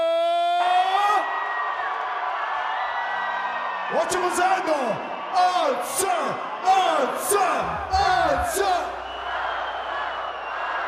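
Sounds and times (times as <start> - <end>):
crowd screaming and cheering at a packed concert hall: 0.0 - 10.8
speech: 3.9 - 9.0.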